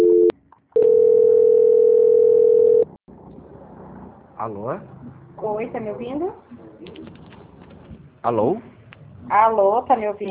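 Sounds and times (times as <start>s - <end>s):
telephone line tone during call transfer to an extension: 0.0s - 2.9s
speech: 4.4s - 7.0s, 8.2s - 8.7s, 9.3s - 10.2s.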